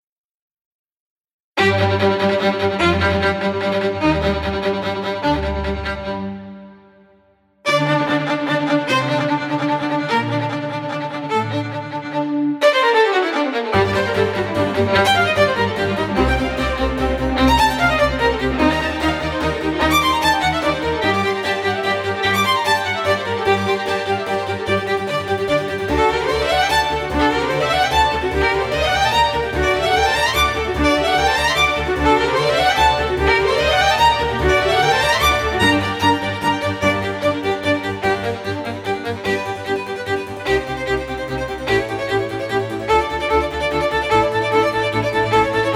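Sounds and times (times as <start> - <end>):
solo violin in orchestra playing presto: 1.6 - 45.7
harpsichord in orchestra playing presto: 13.8 - 45.7.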